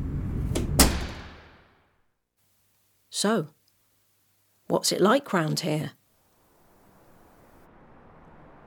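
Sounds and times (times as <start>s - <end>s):
front door of a brand new house slamming shut: 0.5s - 1.7s
speech: 3.2s - 3.6s, 4.7s - 6.0s.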